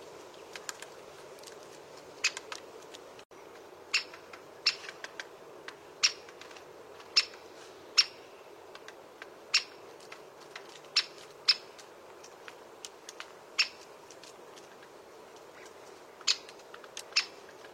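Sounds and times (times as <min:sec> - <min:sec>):
steady low hiss: 0:00.0 - 0:17.7
great spotted woodpecker giving kik calls: 0:02.1 - 0:03.0, 0:03.8 - 0:05.3, 0:06.0 - 0:12.4, 0:13.2 - 0:13.9, 0:15.5 - 0:17.7.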